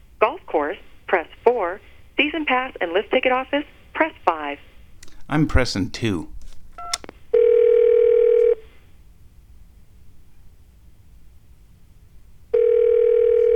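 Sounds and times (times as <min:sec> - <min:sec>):
speech: 0:00.5 - 0:04.7, 0:05.3 - 0:06.4
telephone ringback tone: 0:06.8 - 0:08.6, 0:12.5 - 0:13.5.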